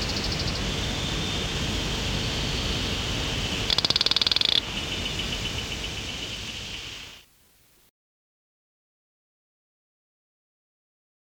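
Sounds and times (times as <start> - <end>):
Hosmer's frog Cophixalus hosmeri calling: 0.0 - 0.6, 3.7 - 4.7
loud background hiss: 0.0 - 7.9.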